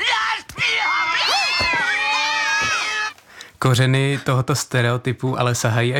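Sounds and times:
several cartoon cats meowing and yowling: 0.2s - 3.2s
speech: 3.6s - 5.9s.

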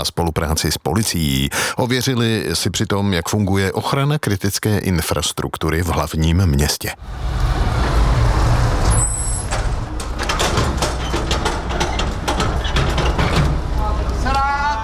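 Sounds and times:
speech: 0.0s - 7.6s
whine: 7.0s - 10.1s
heavy truck rumbling to a halt: 7.0s - 14.8s.

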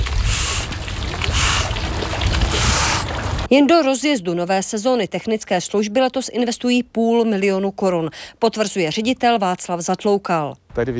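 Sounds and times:
running water gushing steadily: 0.0s - 3.5s
speech: 3.5s - 10.9s.

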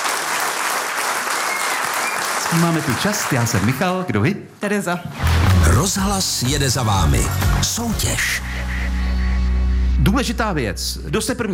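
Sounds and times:
audience applause: 0.0s - 4.1s
speech: 2.5s - 8.7s, 10.0s - 11.5s.

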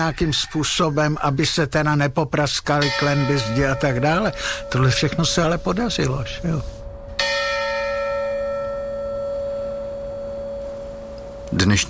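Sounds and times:
speech: 0.0s - 6.8s, 11.5s - 11.8s
large church tower bell ringing: 2.7s - 11.5s.

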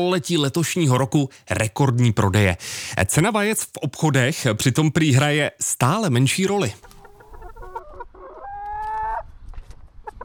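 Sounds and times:
speech: 0.0s - 6.9s
chickens clucking at a backyard henhouse in a family-house garden in Telč: 6.8s - 10.2s.

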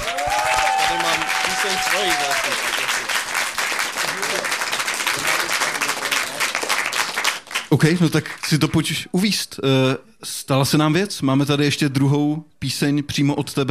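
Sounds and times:
whistle or cheer: 0.0s - 2.7s
audience applauding: 0.0s - 8.7s
speech: 1.7s - 2.7s, 7.7s - 13.6s.

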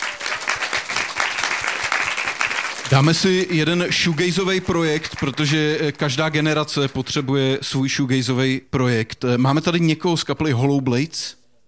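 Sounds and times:
audience applause after a band's set at a music event: 0.0s - 6.4s
speech: 2.9s - 11.4s.

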